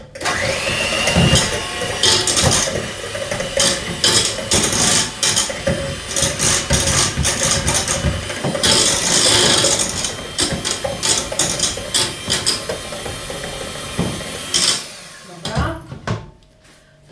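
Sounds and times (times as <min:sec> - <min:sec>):
liquid ingredients with salt and pepper being mixed in a pot: 0:00.0 - 0:15.6.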